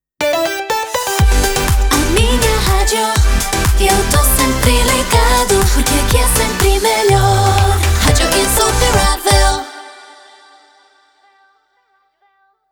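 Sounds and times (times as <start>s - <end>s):
radio jingle with slogan: 0.2s - 9.6s.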